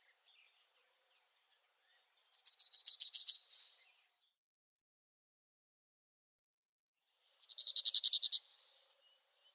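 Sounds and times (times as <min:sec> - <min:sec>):
yellowhammer singing: 0:00.0 - 0:04.3, 0:07.4 - 0:09.5
speech: 0:03.1 - 0:03.4.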